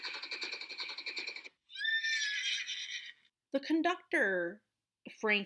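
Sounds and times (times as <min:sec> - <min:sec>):
horse whinnying as its rider runs it towards an approaching train: 0:01.7 - 0:03.3
speech: 0:03.5 - 0:05.4.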